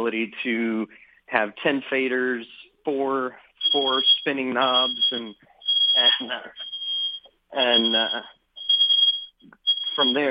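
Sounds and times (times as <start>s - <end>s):
speech: 0.0s - 6.6s, 7.5s - 8.4s, 9.4s - 10.3s
smoke detector alarm beeping: 3.6s - 10.3s.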